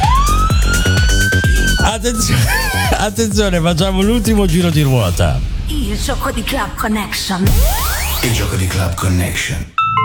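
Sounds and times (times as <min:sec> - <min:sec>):
siren sound effect wailing in a studio: 0:00.0 - 0:02.9
rhythmic thumping music beat: 0:00.0 - 0:09.8
laughter: 0:01.8 - 0:04.4
speech: 0:02.0 - 0:09.8.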